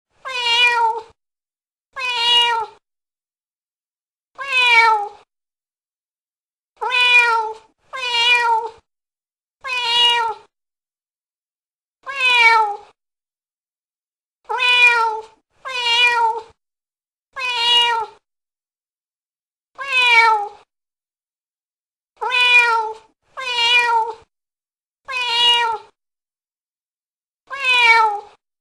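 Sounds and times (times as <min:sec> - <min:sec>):
cat meowing: 0:00.2 - 0:01.2, 0:02.0 - 0:02.8, 0:04.4 - 0:05.3, 0:06.8 - 0:08.9, 0:09.6 - 0:10.5, 0:12.0 - 0:13.0, 0:14.5 - 0:16.6, 0:17.4 - 0:18.2, 0:19.8 - 0:20.7, 0:22.2 - 0:24.3, 0:25.1 - 0:26.0, 0:27.5 - 0:28.4.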